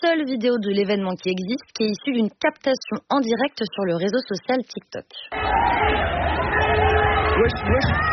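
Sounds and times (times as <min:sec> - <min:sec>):
speech: 0:00.0 - 0:06.6, 0:07.3 - 0:08.1
dense crowd hubbub of young protesters on a street: 0:05.3 - 0:08.1
raised calls of young protesters: 0:05.3 - 0:08.1.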